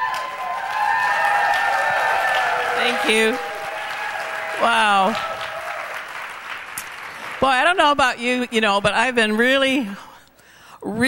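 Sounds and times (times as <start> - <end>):
audience applauding: 0.0 - 8.0
speech: 2.9 - 3.5, 4.6 - 5.3, 7.4 - 10.1, 10.8 - 11.0.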